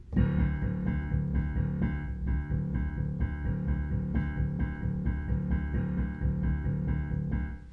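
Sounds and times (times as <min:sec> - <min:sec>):
very simple rocking octaves: 0:00.0 - 0:07.7.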